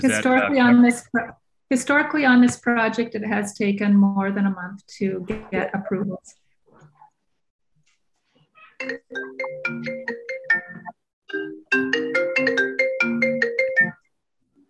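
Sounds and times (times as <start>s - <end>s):
speech: 0.0s - 6.4s, 8.8s - 9.6s
phone ringtone playing a bright tonal melody: 8.8s - 14.0s.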